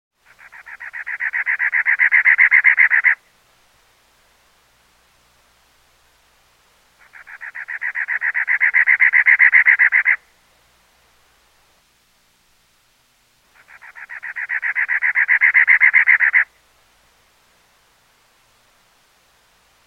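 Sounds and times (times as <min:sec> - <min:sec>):
Cactus Wren rhythmic chirps: 0:00.2 - 0:03.2, 0:07.0 - 0:10.2, 0:13.5 - 0:16.5.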